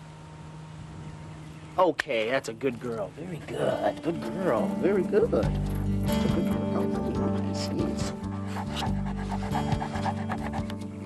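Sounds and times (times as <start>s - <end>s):
steady low hum: 0.0s - 11.0s
speech: 1.8s - 6.4s
dog panting: 4.4s - 11.0s.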